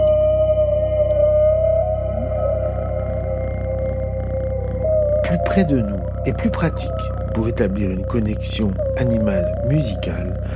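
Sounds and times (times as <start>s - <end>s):
faint sustained tonal hum: 0.0s - 10.5s
cat purring: 2.2s - 10.5s
speech: 5.6s - 10.5s.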